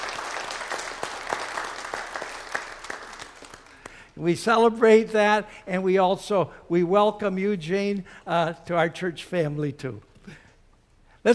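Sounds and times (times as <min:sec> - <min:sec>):
church audience applauding a newly married couple: 0:00.0 - 0:04.0
speech: 0:04.2 - 0:10.4.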